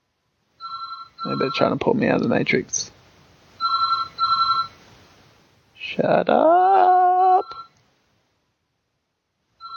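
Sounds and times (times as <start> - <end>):
landline telephone ringing with electronic trills: 0.6 - 1.8, 3.6 - 4.8, 7.4 - 7.8, 9.6 - 9.7
speech: 1.2 - 2.9, 6.0 - 6.9.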